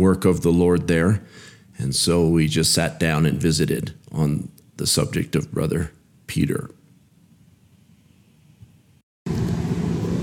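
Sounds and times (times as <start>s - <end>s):
speech: 0.0s - 6.8s
car engine and road noise inside a car: 9.3s - 10.2s.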